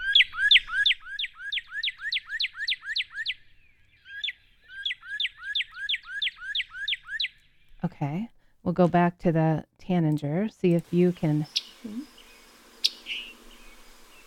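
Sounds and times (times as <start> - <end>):
northern cardinal singing downslurred whistles: 0.0 - 7.4, 11.3 - 14.2
speech: 7.8 - 12.1.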